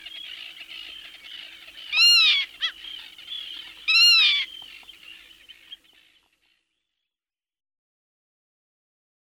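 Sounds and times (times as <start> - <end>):
dense continuous chatter of many other birds: 0.0 - 7.1
black-tailed godwit nasal harmonic calls: 1.3 - 4.5.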